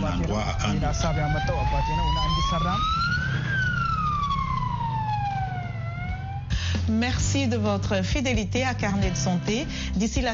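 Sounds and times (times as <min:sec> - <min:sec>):
homemade ambulance siren wailing: 0:00.0 - 0:06.6
low rumble of engine and traffic noise: 0:00.0 - 0:08.2
speech: 0:00.3 - 0:03.6, 0:06.9 - 0:10.3.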